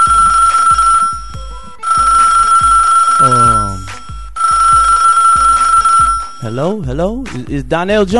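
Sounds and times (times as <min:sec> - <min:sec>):
telephone ringing with piercing electronic tone: 0:00.0 - 0:06.7
thumping beat: 0:00.0 - 0:08.1
speech: 0:06.5 - 0:08.1.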